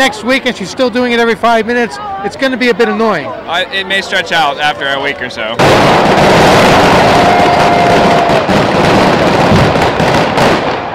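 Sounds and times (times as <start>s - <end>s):
speech: 0.1s - 8.7s
loud fireworks exploding with booming bangs and crackle: 5.6s - 10.9s.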